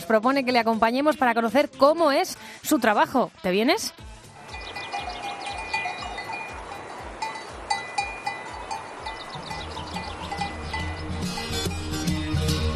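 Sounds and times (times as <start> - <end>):
speech: 0.1 - 4.1
many cowbells clanking and jingling on a flock of sheep in Soria: 4.4 - 12.6.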